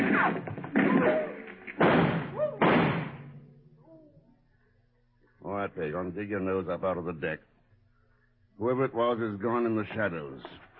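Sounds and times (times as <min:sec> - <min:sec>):
loud sharp gunshots: 0:00.0 - 0:03.4
speech: 0:05.8 - 0:07.6, 0:08.6 - 0:10.7.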